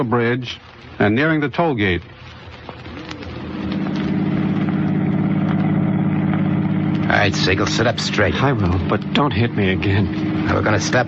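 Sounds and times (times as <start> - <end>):
speech: 0.0 - 2.2, 7.1 - 11.0
car engine humming inside the vehicle while driving: 2.2 - 11.0.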